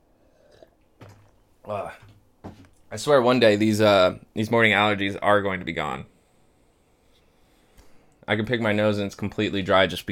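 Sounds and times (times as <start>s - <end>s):
person sipping coffee: 0.1s - 1.3s
speech: 1.7s - 2.1s, 2.9s - 6.1s, 8.3s - 10.0s.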